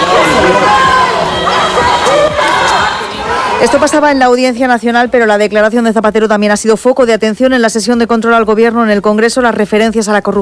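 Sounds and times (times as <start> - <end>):
crowd shouting insults outside a courthouse: 0.0 - 4.2
speech: 3.6 - 10.3.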